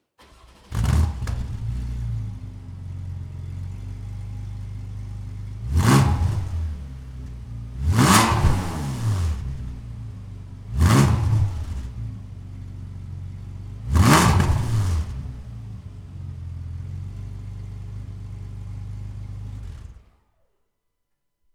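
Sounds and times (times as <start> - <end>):
vehicle accelerating: 0.7 - 15.9.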